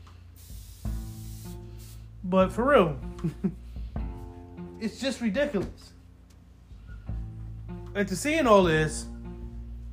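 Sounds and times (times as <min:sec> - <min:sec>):
fabric freshener sprayed on a couch: 0:00.3 - 0:02.2
speech: 0:02.2 - 0:03.6, 0:04.8 - 0:06.0, 0:08.0 - 0:09.1.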